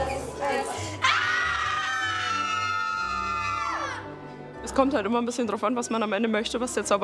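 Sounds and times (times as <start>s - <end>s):
group of voices screaming together into a potion: 1.0s - 4.1s
speech: 4.8s - 7.0s.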